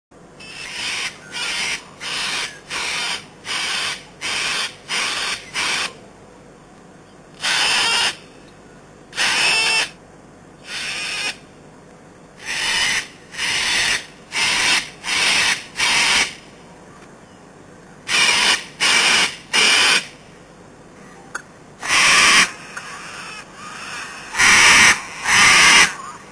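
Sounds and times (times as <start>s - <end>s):
cockatoo: 0.4s - 6.0s, 7.4s - 8.2s, 9.1s - 10.0s, 12.4s - 17.1s, 18.1s - 20.1s, 21.0s - 26.3s.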